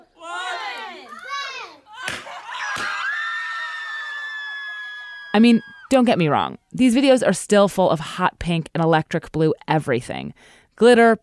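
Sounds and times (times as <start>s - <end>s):
family shrieking with delight at reveal party: 1.9s - 6.0s
speech: 5.4s - 11.2s.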